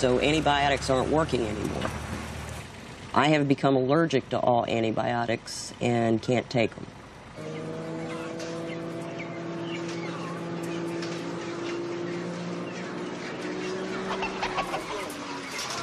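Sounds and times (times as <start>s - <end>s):
speech: 0.0s - 2.1s, 3.1s - 7.6s
many chickens clucking in a crowded chicken house: 0.0s - 3.3s, 7.0s - 15.8s
steady low mechanical hum: 0.0s - 15.8s.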